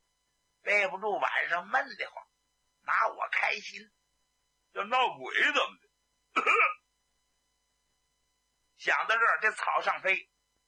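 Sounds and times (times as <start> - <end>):
speech: 0.7 - 2.2, 2.8 - 4.0, 4.7 - 5.8, 6.4 - 6.8, 8.8 - 10.3
man coughing: 6.3 - 6.8.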